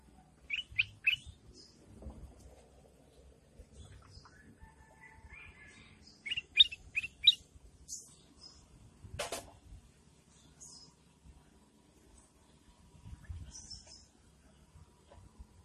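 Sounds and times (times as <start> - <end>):
sooty-headed bulbul song with chirps: 0.4 - 1.4, 6.2 - 7.4.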